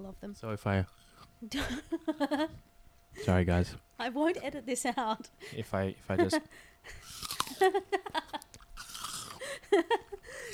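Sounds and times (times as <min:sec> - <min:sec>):
speech: 0:00.0 - 0:08.4, 0:09.6 - 0:10.5
biting into an apple: 0:07.0 - 0:07.6, 0:08.5 - 0:09.4
wet rhythmic chewing: 0:07.0 - 0:07.7, 0:08.3 - 0:09.5.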